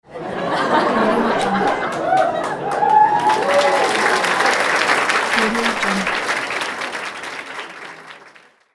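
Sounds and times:
crowd laughing: 0.1s - 4.8s
crowd cheering: 0.1s - 8.4s.

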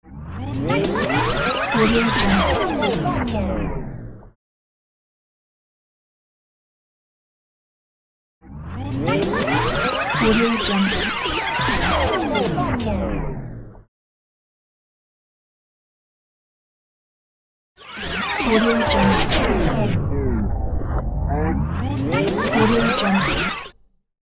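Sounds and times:
record scratch rewind: 0.6s - 4.0s, 8.6s - 13.6s, 17.8s - 23.9s.

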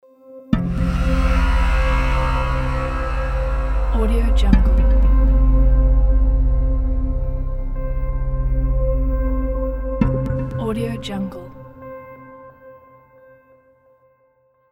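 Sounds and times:
dark atmospheric logo sound: 0.6s - 12.5s.

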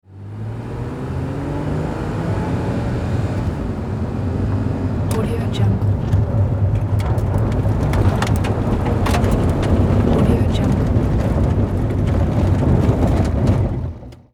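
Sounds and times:
vehicle on pavement at high speed: 0.0s - 14.3s
vehicle on gravel at high speed: 5.1s - 14.3s.

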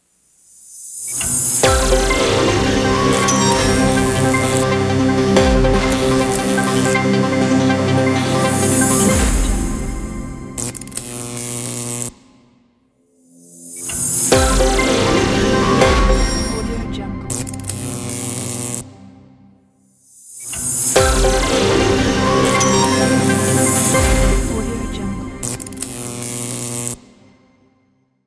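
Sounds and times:
electric news logo jingle: 1.6s - 11.4s, 14.0s - 18.4s, 21.0s - 26.6s.

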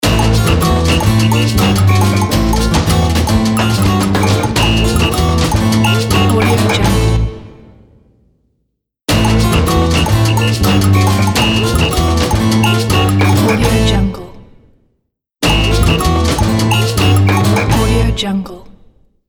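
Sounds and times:
Brazilian cuica logo: 0.0s - 7.0s, 9.2s - 13.7s, 15.6s - 17.8s.

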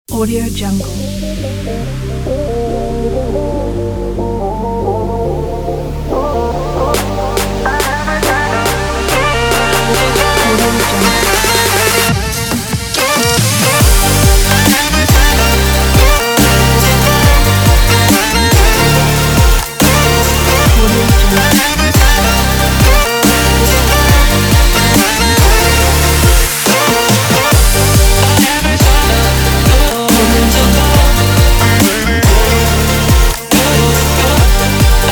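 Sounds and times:
dubstep music: 0.1s - 35.1s.

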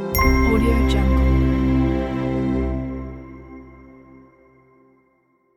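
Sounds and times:
classical piano logo jingle: 0.2s - 4.4s.

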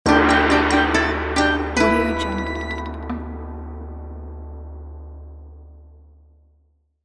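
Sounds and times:
cartoon kung fu fight musical accent: 0.1s - 4.3s.

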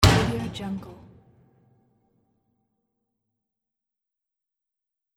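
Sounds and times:
old metal kitchen oven door hit: 0.0s - 0.7s.

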